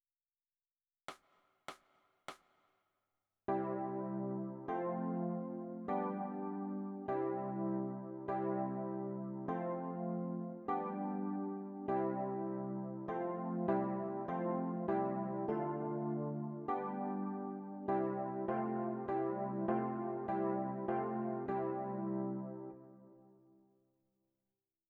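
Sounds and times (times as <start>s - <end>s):
electric piano: 3.5s - 23.5s.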